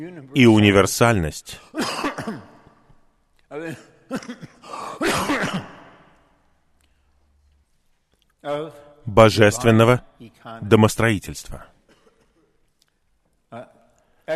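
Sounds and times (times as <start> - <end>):
speech: 0.0 - 2.4, 3.5 - 5.6, 8.4 - 11.7
chesty phlegmy cough: 1.6 - 2.9, 3.7 - 6.1, 11.8 - 12.6
throat clearing: 4.1 - 6.0, 11.9 - 12.6.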